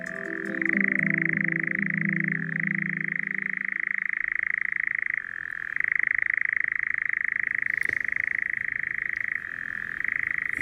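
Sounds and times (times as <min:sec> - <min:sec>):
low hum: 0:00.0 - 0:04.6
European nightjar churring on a windless evening: 0:00.0 - 0:10.6.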